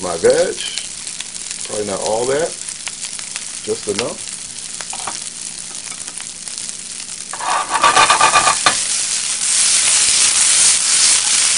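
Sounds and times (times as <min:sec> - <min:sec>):
speech: 0:00.0 - 0:00.8, 0:01.7 - 0:02.6, 0:03.6 - 0:04.3
fried rice with vegetables sizzling in oil in a hot pan: 0:00.0 - 0:11.5
scraping and stirring in a pan: 0:07.3 - 0:11.5.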